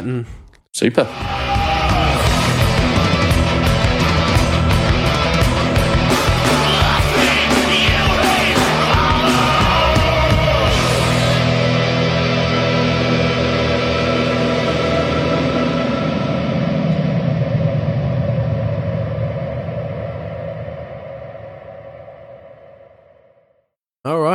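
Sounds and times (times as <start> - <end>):
speech: 0.0 - 1.4
dense wall of distorted guitars: 0.8 - 23.1
rock singer screaming in a song's bridge: 1.0 - 17.2
pounding drums: 1.1 - 11.4.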